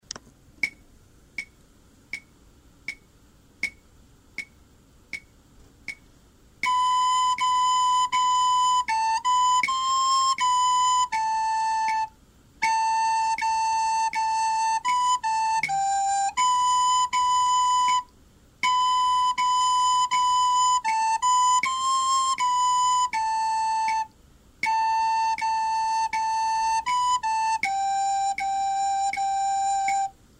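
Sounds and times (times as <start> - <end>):
recorder melody: 6.6 - 30.2.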